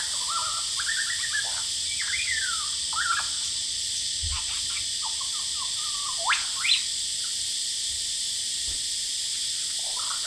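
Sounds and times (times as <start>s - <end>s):
male superb lyrebird singing in Horsfield Bay New South Wales Australia: 0.0s - 3.5s, 4.3s - 6.9s
cicadas buzzing in Horsfield Bay New South Wales Australia: 0.0s - 10.2s.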